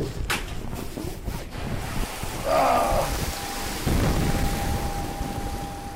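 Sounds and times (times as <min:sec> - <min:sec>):
heavy water spray in rain test chamber: 0:01.2 - 0:05.9
tonal hum: 0:02.9 - 0:05.9.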